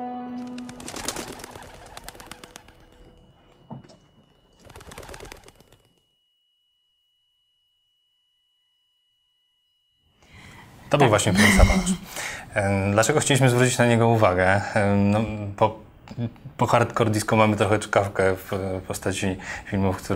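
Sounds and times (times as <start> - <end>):
birds fluttering and calling in an enclosed space: 0.6 - 3.2, 4.5 - 6.0
speech: 10.9 - 20.1.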